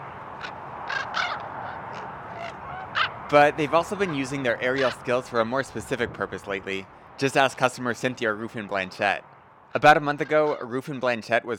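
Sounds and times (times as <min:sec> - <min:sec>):
ravens giving short harsh croaking caws: 0:00.0 - 0:05.2, 0:09.7 - 0:10.8
speech: 0:03.3 - 0:11.5.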